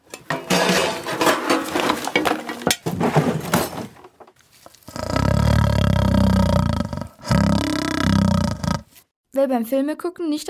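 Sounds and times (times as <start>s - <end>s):
clattering and knocking noises: 0.0s - 4.0s
lion roaring: 4.4s - 9.0s
speech: 9.4s - 10.4s.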